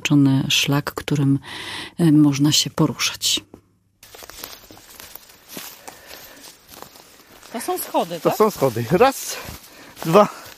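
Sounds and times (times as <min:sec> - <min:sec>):
speech: 0:00.1 - 0:03.6, 0:07.6 - 0:10.4
footsteps on dry pine cones on a forest trail: 0:04.0 - 0:10.5.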